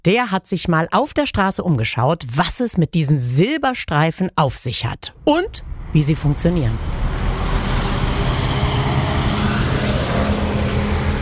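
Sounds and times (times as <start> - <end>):
speech: 0.0 - 7.0
dense roar of busy road traffic with cars, buses and trucks: 5.2 - 11.2.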